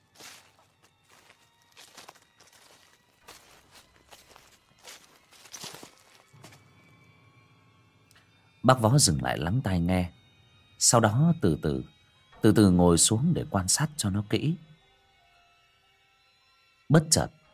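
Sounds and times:
person treading through leafy bushes: 0.0s - 6.6s
speech: 8.7s - 10.2s, 10.8s - 14.7s, 16.9s - 17.4s.

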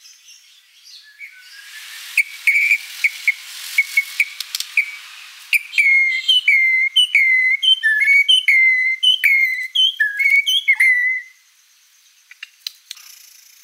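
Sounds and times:
white-rumped shama lure song of looping downslurred whistles: 0.9s - 11.4s
faint clicks: 4.3s - 4.8s, 12.3s - 13.6s.

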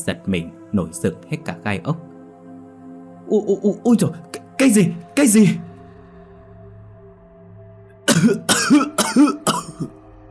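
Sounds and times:
speech: 0.0s - 2.1s, 3.3s - 5.7s, 8.2s - 9.4s
person coughing harshly inside a coffin: 8.1s - 10.0s.

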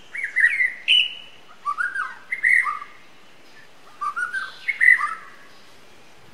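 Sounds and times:
wild white-rumped shama singing whistled phrases in forest: 0.0s - 3.0s, 3.9s - 5.5s.

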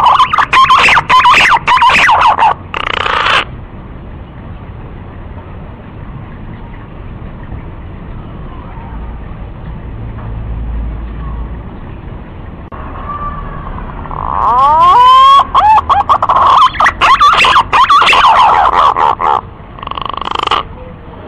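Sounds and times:
green pigeon lure call whistling: 0.0s - 3.5s, 14.1s - 20.6s.

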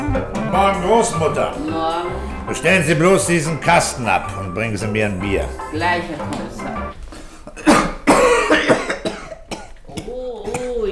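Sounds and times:
speech: 0.6s - 6.8s
man coughing heavily: 7.5s - 9.8s.

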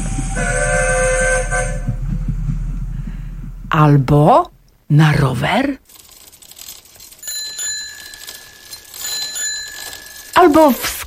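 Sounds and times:
train horn blowing a harmonic chord: 0.0s - 2.0s
train rolling rumble: 0.0s - 4.7s
speech: 3.8s - 6.0s, 10.4s - 11.0s.

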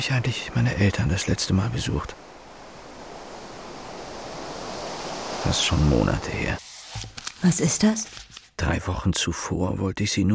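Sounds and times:
speech: 0.0s - 2.3s, 5.4s - 10.3s
sea waves washing: 0.0s - 8.2s.

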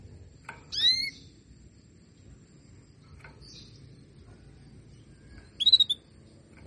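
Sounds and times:
low background hum: 0.0s - 6.6s
female canary call: 5.6s - 6.0s.

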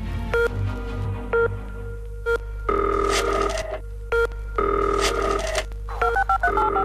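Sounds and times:
steady low hum: 0.0s - 6.8s
telephone keypad tones dialing a number: 2.3s - 6.8s.

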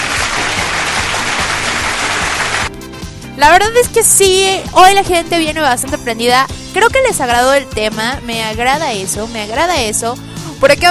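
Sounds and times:
audience applause: 0.0s - 2.7s
speech: 3.4s - 10.8s.

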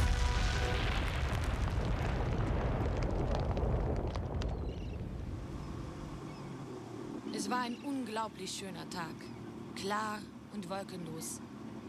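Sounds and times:
house exploding with a big bang: 0.0s - 5.6s
speech: 7.6s - 11.8s.

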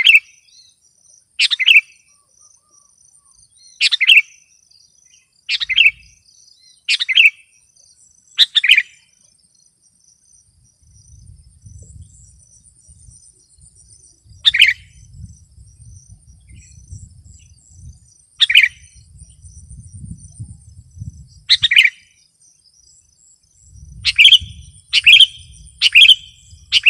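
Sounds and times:
sooty-headed bulbul singing: 1.4s - 9.7s, 10.8s - 26.8s
soft low rumbling: 10.8s - 18.1s, 19.0s - 21.5s.

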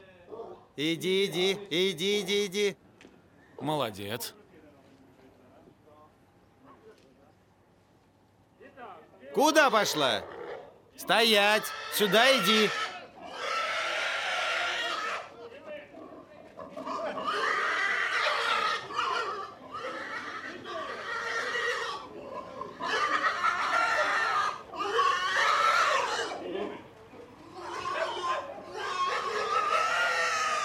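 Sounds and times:
speech: 0.8s - 2.8s, 3.6s - 4.4s, 9.4s - 10.3s, 11.0s - 12.9s
pig squealing while being slaughtered: 9.5s - 15.4s, 16.0s - 26.8s, 27.4s - 30.6s.

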